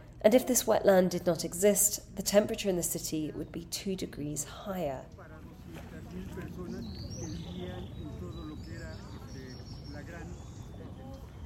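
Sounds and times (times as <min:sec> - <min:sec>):
speech: 0:00.2 - 0:05.3
steady low rumble: 0:02.0 - 0:11.4
faint indistinct murmuring: 0:04.6 - 0:11.4
birds calling and chirping in the Xochimilco wetland: 0:05.2 - 0:11.4.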